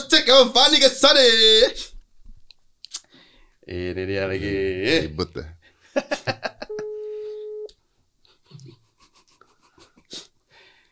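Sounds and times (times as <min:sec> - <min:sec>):
speech: 0:00.2 - 0:01.9, 0:03.7 - 0:06.5
laughter: 0:06.0 - 0:06.9
phone call ringback tone: 0:06.7 - 0:07.7.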